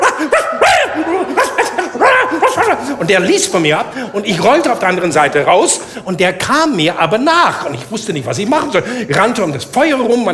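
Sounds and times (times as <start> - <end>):
person imitating the barking of a small hysterical dog: 0.0 - 2.9
laughter: 0.0 - 6.2
speech: 3.0 - 10.3.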